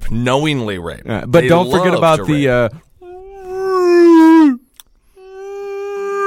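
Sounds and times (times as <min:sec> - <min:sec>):
speech: 0:00.1 - 0:02.8
voice imitating a whale call: 0:03.0 - 0:06.2.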